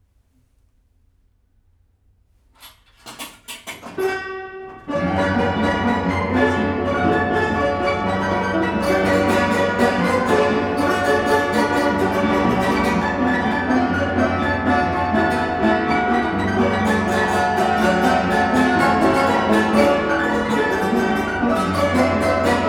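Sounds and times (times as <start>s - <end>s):
1899 Belgian barrel organ mechanism in a wooden cabinet: 4.7s - 22.6s.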